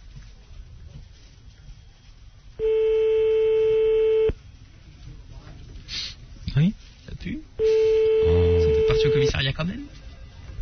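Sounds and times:
quiet telephone line noise: 0.0s - 5.8s, 7.2s - 10.6s
telephone tone while calling a landline: 2.6s - 4.4s, 7.6s - 9.3s.

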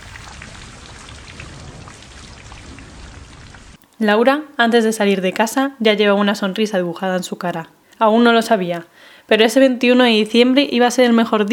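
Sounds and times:
shower water running in a home bathroom: 0.0s - 3.8s
speech: 4.0s - 11.5s.

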